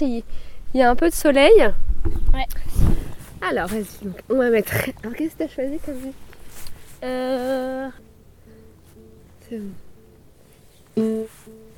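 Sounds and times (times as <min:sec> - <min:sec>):
speech: 0:00.0 - 0:06.2, 0:07.0 - 0:08.0, 0:09.5 - 0:09.8, 0:11.0 - 0:11.6
sustained buzzy tone from a Bluetooth speaker: 0:06.9 - 0:11.7
faint repeating blips from a Bluetooth speaker: 0:07.0 - 0:11.7.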